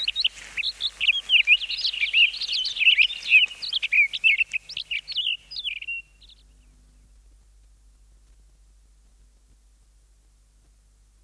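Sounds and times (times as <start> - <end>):
Townsend's solitaire song: 0.0 - 7.2.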